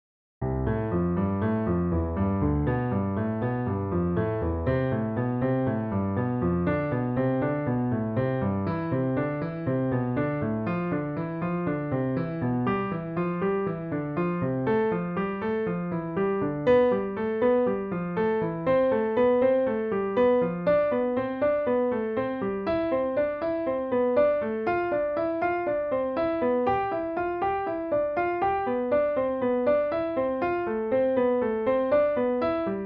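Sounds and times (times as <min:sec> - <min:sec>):
piano finger exercise: 0:00.4 - 0:32.8.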